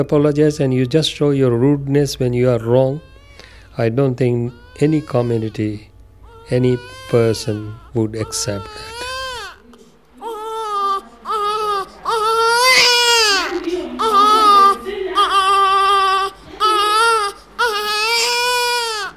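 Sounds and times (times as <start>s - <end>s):
speech: 0.0s - 3.1s, 3.8s - 5.9s, 6.5s - 8.9s
newborn baby crying to be fed: 2.7s - 3.6s, 4.4s - 19.1s.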